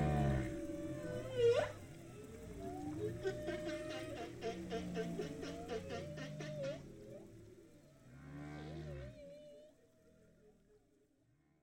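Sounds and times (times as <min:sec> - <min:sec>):
low rumbling: 0:00.0 - 0:04.2
humpback whale song in the ocean: 0:00.0 - 0:09.6.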